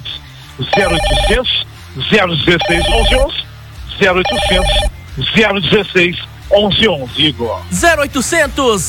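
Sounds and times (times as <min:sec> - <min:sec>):
telephone with bright warbling electronic ring: 0:00.6 - 0:01.6, 0:02.5 - 0:03.4, 0:04.0 - 0:05.0
speech: 0:00.6 - 0:03.4, 0:04.0 - 0:08.8.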